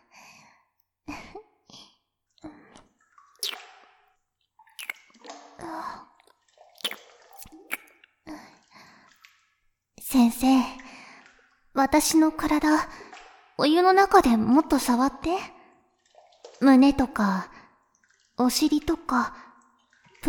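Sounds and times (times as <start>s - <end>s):
wet kissing sounds: 3.4s - 3.6s, 4.8s - 5.1s, 6.8s - 8.0s
speech: 10.4s - 10.8s, 11.8s - 13.0s, 13.6s - 15.5s, 16.6s - 17.5s, 18.4s - 19.4s.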